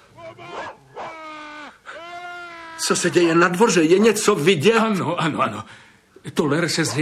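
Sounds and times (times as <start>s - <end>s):
dog yelping while shut into a shed in a yard: 0.0s - 2.8s
speech: 2.8s - 7.0s.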